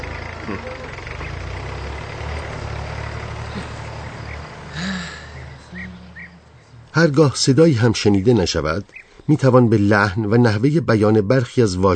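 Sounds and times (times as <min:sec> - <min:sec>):
heavy tractor engine chugging: 0:00.0 - 0:10.1
speech: 0:00.5 - 0:01.0, 0:07.0 - 0:11.9.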